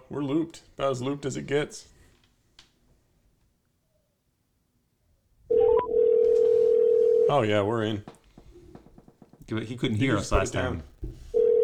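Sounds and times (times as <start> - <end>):
speech: 0.1 - 1.9, 7.3 - 8.2, 9.5 - 11.2
steady telephone tone of a call placed on a paired phone: 5.5 - 7.4, 11.4 - 11.6.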